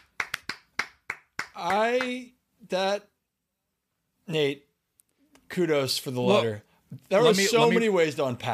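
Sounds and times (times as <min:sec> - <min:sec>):
hand claps: 0:00.0 - 0:02.3
speech: 0:01.6 - 0:03.1, 0:04.3 - 0:04.7, 0:05.5 - 0:08.5.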